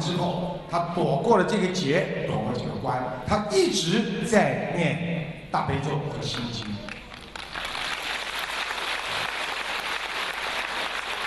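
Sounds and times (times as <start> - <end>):
speech: 0.1 - 7.0
large audience applauding: 6.6 - 11.2.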